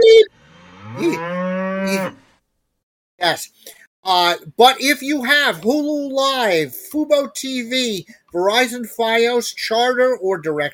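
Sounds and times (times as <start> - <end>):
cow mooing: 0.4 - 2.2
speech: 3.3 - 10.7.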